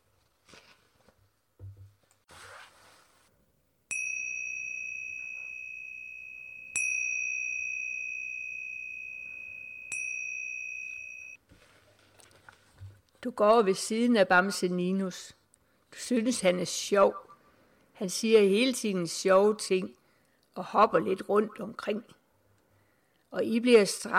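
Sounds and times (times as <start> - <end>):
small bell chiming: 3.9 - 11.4
speech: 13.2 - 15.4, 16.0 - 17.3, 18.0 - 20.0, 20.6 - 22.2, 23.3 - 24.1.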